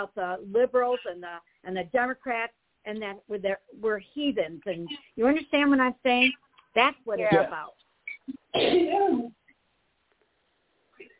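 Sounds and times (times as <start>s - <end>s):
speech: 0.0s - 7.8s, 8.5s - 9.4s
person sneezing: 7.3s - 7.5s, 8.5s - 9.4s.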